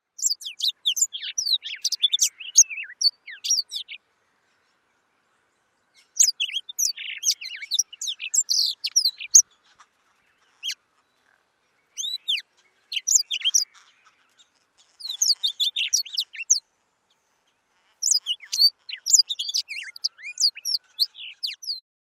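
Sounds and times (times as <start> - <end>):
Rüppell's warbler: 0.1 - 21.8.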